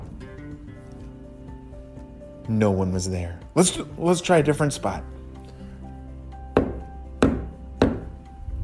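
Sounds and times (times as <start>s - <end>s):
speech: 2.5s - 5.2s
knocking on a tree trunk: 6.6s - 8.1s.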